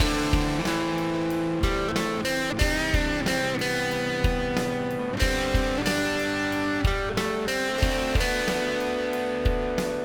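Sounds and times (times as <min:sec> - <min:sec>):
electric guitar lead through overdrive pedal with gain: 0:00.0 - 0:10.0.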